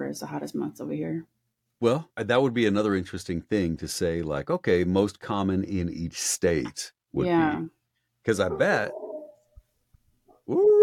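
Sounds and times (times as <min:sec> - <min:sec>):
speech: 0:00.1 - 0:09.0, 0:10.5 - 0:10.8
dog howling: 0:08.4 - 0:09.5, 0:10.4 - 0:10.8
dog yipping: 0:08.5 - 0:09.5.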